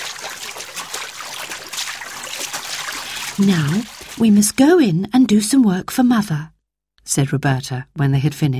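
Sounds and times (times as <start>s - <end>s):
water splashing and trickling from a hand pump: 0.0s - 4.6s
speech: 3.4s - 8.5s.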